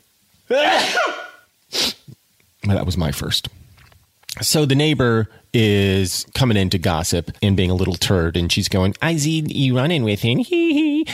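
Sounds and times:
speech: 0:00.5 - 0:01.2, 0:02.7 - 0:03.6, 0:04.4 - 0:11.1
sneeze: 0:00.5 - 0:02.1
short breathy sniff: 0:01.7 - 0:02.2.

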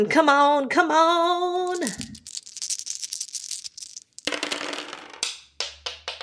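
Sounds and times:
speech: 0:00.0 - 0:02.1
three dice rattling across a surface: 0:01.6 - 0:05.2.

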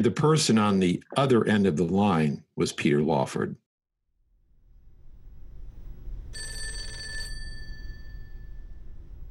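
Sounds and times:
speech: 0:00.0 - 0:03.6
telephone bell ringing for an incoming phone call: 0:06.3 - 0:09.0.

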